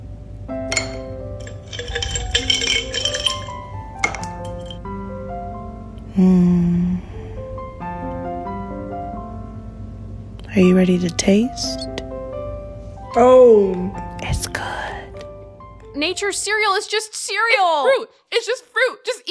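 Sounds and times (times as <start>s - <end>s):
ice cubes clinking against a bowl of berries in coconut water: 0.7s - 4.8s
speech: 6.2s - 6.7s, 10.6s - 11.9s, 13.2s - 14.6s, 16.0s - 19.2s.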